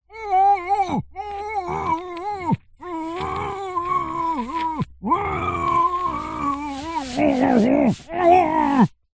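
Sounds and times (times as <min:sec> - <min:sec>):
man screaming in panic with a hand over his mouth: 0:00.1 - 0:09.0.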